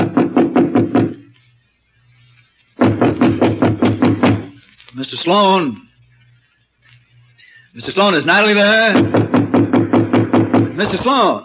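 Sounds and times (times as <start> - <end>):
knocking on a door: 0.0 - 1.2, 2.8 - 4.6, 9.0 - 11.0
speech: 5.0 - 5.9, 7.8 - 9.2, 10.8 - 11.4.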